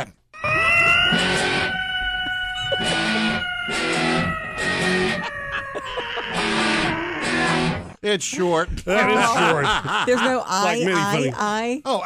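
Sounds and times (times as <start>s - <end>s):
cat meowing: 0.4s - 7.4s
laughter: 5.0s - 7.0s, 8.8s - 11.3s
speech: 8.1s - 12.0s.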